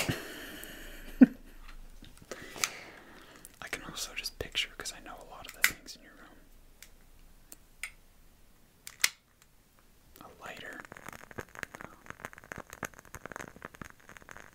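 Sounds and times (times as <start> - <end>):
lit candle wick crackling and popping: 0.0 - 8.0, 8.8 - 14.5.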